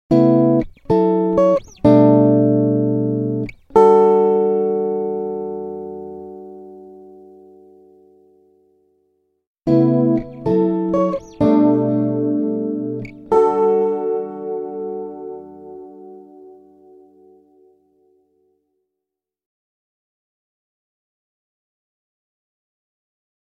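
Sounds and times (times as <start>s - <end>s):
electric guitar fingerpicking: 0.1s - 8.3s, 9.7s - 17.9s.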